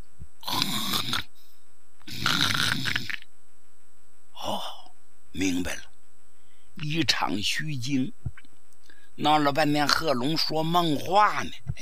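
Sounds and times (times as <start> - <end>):
human voice imitating loud snoring in a room: 0.4 - 1.3, 2.1 - 3.2
speech: 6.8 - 8.2, 9.2 - 11.8.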